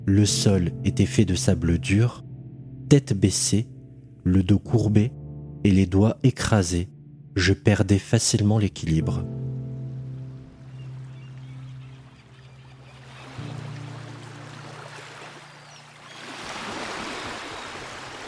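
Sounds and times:
speech: 0.0s - 2.3s, 2.9s - 9.4s
rush of splashing water: 10.2s - 18.2s.

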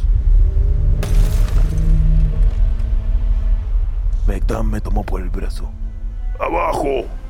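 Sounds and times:
deep steady rumble of a shaking lighthouse tower: 0.0s - 7.2s
scattered crackling glass shards falling: 1.0s - 2.0s
lighthouse glass shattering: 1.0s - 2.3s
speech: 4.5s - 7.2s.

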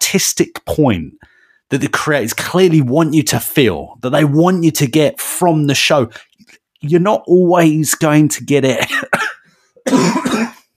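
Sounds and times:
speech: 0.1s - 9.2s, 9.8s - 10.3s
harsh raspy cough: 8.7s - 10.7s.

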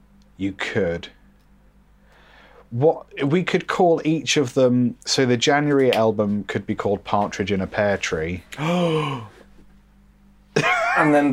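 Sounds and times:
speech: 0.4s - 1.2s, 2.7s - 9.4s, 10.6s - 11.3s
person giving a theatrical sarcastic gasp: 8.5s - 9.4s.

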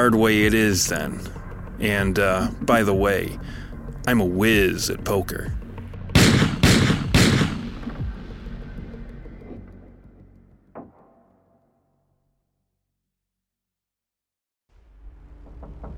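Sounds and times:
speech: 0.0s - 5.6s
long rumbling echo of gunshots: 6.1s - 8.3s
gunshots from a gun with its flash suppressor removed: 6.2s - 7.9s.

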